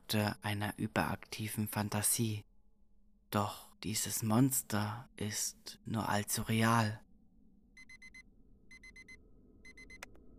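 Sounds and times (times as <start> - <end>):
speech: 0.1 - 2.5, 3.3 - 7.0
low rumbling background: 0.8 - 10.3
alarm clock beeping electronic tones: 7.8 - 10.2.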